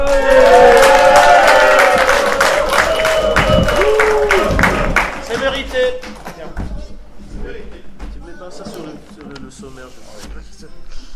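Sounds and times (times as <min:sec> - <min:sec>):
cheering: 0:00.0 - 0:05.2
crowd applauding: 0:00.0 - 0:06.4.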